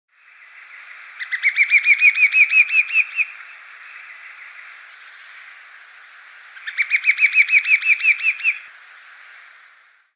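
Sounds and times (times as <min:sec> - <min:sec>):
bird chirping song: 0:00.1 - 0:09.6.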